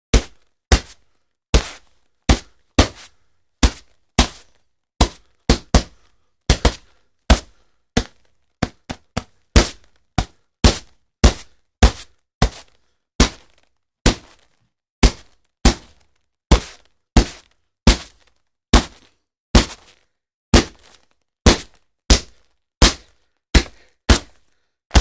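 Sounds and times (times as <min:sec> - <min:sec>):
boxing gloves hitting: 0:00.1 - 0:01.0, 0:01.6 - 0:03.0, 0:03.6 - 0:14.4, 0:15.0 - 0:20.0, 0:20.6 - 0:24.9.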